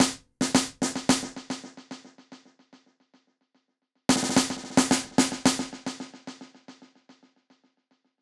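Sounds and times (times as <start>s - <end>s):
snare drum with delay: 0.0s - 3.3s, 4.1s - 7.7s.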